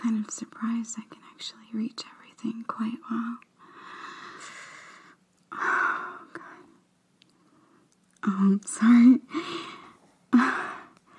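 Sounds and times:
speech: 0.0s - 3.5s, 8.2s - 9.7s
soft slow breathing into a listener's ear: 3.6s - 8.0s, 9.3s - 11.1s.

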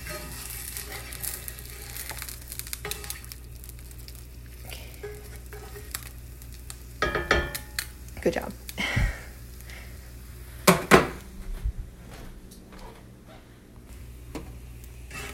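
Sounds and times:
egg frying in a pan: 0.0s - 10.8s, 13.9s - 15.3s
speech: 8.3s - 8.6s.

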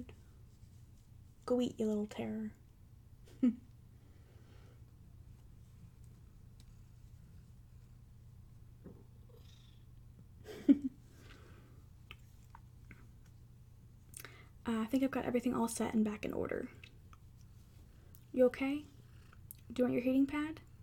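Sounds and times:
speech: 1.5s - 2.6s, 3.4s - 3.7s, 14.7s - 16.8s, 18.4s - 18.9s, 19.7s - 20.7s
cat purring: 5.6s - 10.4s, 17.5s - 19.8s.

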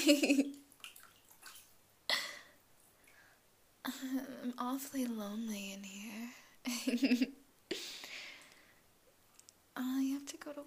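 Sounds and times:
water sloshing and splashing in a warm bubble bath as a person moves in the tub: 0.0s - 1.9s
water dripping: 0.0s - 3.3s
speech: 0.1s - 0.6s, 3.8s - 7.8s, 9.8s - 10.6s.

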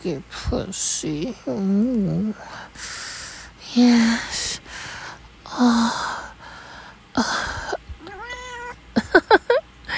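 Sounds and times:
speech: 0.0s - 3.0s, 3.7s - 4.6s, 5.6s - 6.2s, 7.2s - 7.5s
cat meowing: 8.0s - 8.8s.

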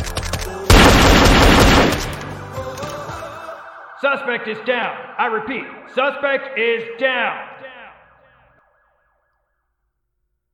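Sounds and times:
heavy gunfire during a police shootout: 0.7s - 2.3s
speech: 4.0s - 7.6s.

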